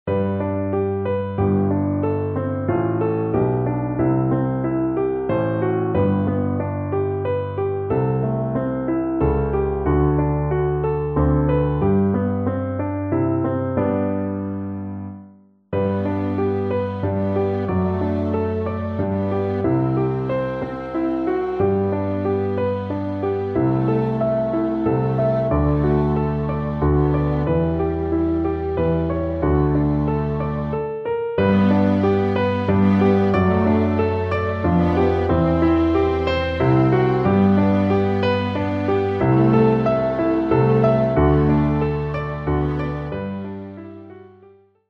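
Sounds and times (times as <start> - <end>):
piano playback: 0.0 - 44.7
viola solo: 15.8 - 43.8.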